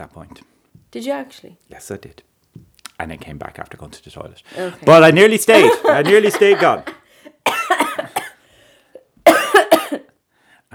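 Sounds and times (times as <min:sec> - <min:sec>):
speech: 0:00.0 - 0:02.3, 0:03.0 - 0:07.0
laughter: 0:04.5 - 0:07.1
coughing fit after laughing: 0:05.5 - 0:08.4, 0:09.3 - 0:10.0.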